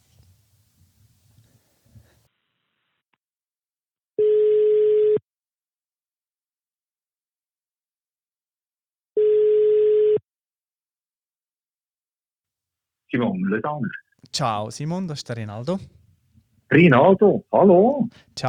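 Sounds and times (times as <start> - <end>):
phone call ringback tone on the line: 4.2 - 5.2, 9.2 - 10.2
speech: 13.1 - 16.0, 16.7 - 18.4.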